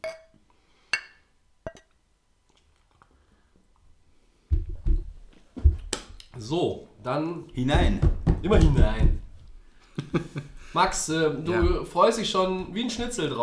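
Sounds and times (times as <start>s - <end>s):
glasses clinking in a toast: 0.0s - 1.9s
speech: 6.4s - 9.2s, 10.1s - 13.4s
laughter: 9.9s - 11.9s.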